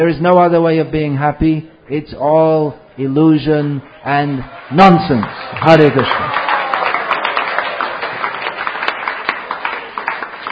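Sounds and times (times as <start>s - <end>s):
speech: 0.0s - 6.4s
audience cheering and clapping for a speaker: 3.8s - 10.4s.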